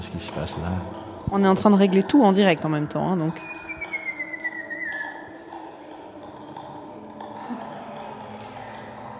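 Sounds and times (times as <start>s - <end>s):
speech: 0.0s - 3.6s
dense murky wash of sound: 2.1s - 9.1s
human whistled tone processed through audio feedback: 3.3s - 5.5s.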